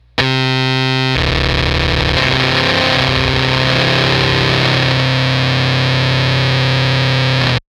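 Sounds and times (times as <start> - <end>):
guitar through fuzz pedal: 0.0 - 7.6.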